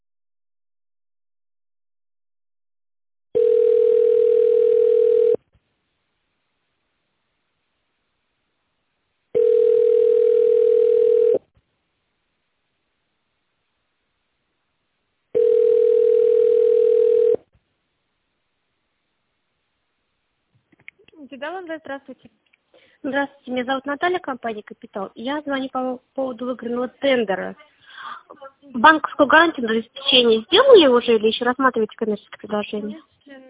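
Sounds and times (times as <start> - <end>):
telephone ringback tone waiting on the line for a company switchboard: 3.4 - 5.4, 9.4 - 11.4, 15.4 - 17.4
speech: 21.4 - 33.4.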